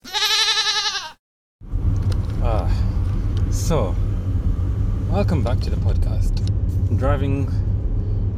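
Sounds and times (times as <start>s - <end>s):
road noise inside a moving car: 1.6s - 8.3s
speech: 3.7s - 4.0s, 5.2s - 7.6s.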